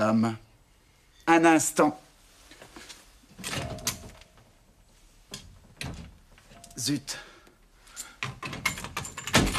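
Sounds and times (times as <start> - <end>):
speech: 0.0 - 0.4, 1.3 - 2.0, 6.8 - 7.3
sideboard cupboard door sticking and rattling as it is tugged open: 8.4 - 9.5.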